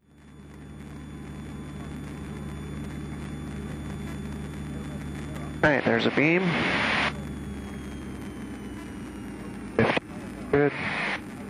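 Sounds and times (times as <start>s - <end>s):
small airplane engine drone during touch-and-go landing: 0.0s - 11.4s
speech: 5.6s - 6.8s, 10.5s - 11.0s.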